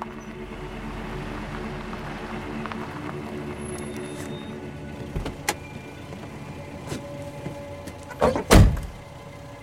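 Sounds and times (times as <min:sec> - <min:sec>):
saloon car engine rumble pulling into a driveway at night: 0:00.0 - 0:09.6.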